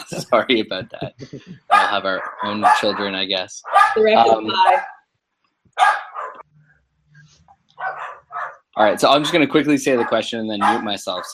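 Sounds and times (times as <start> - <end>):
laughter: 0.0 - 4.7, 8.8 - 11.3
speech: 0.3 - 4.9, 5.8 - 6.0, 8.8 - 11.3
dog barking: 1.7 - 5.0, 5.8 - 6.4, 7.8 - 8.6, 9.8 - 11.3.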